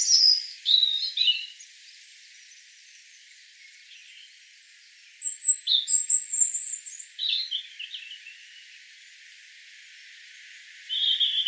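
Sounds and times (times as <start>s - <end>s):
European robin Erithacus rubecula singing: 0.0s - 4.4s, 5.1s - 9.2s, 10.8s - 11.4s.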